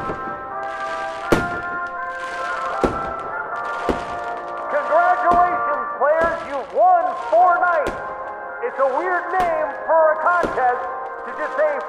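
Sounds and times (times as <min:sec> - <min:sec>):
fireworks bangs: 0:00.0 - 0:11.8
speech: 0:08.9 - 0:11.8.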